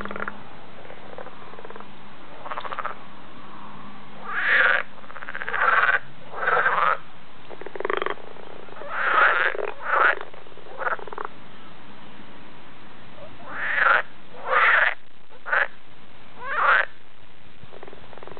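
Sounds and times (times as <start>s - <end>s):
edible frog giving short harsh croaks: 0.0s - 3.0s, 4.2s - 11.3s, 13.4s - 15.8s, 16.4s - 17.0s, 17.7s - 18.3s.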